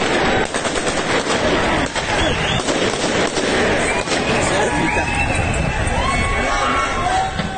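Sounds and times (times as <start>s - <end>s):
sharp gunshots during street protest: 0.0s - 4.8s
noisy outdoor crowd shouting: 0.0s - 7.5s
whistling tones: 1.6s - 2.7s, 3.6s - 6.4s.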